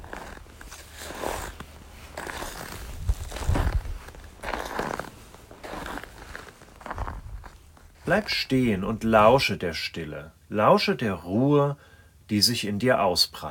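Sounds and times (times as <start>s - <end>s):
boots crunching through snow in a winter landscape: 0.0s - 8.6s
speech: 8.1s - 13.4s.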